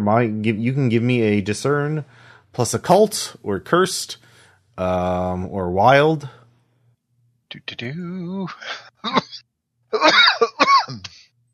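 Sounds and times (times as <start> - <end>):
speech: 0.0 - 6.4, 7.5 - 11.1
person coughing from inhaling smoke: 8.6 - 9.4, 10.0 - 11.3.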